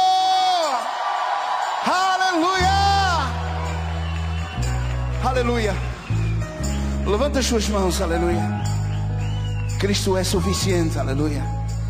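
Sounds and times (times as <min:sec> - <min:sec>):
crowd shouting in jubilation: 0:00.0 - 0:05.2
voices whooping and cheering: 0:00.0 - 0:11.6
speech: 0:05.3 - 0:05.9, 0:07.1 - 0:08.7, 0:09.8 - 0:11.6.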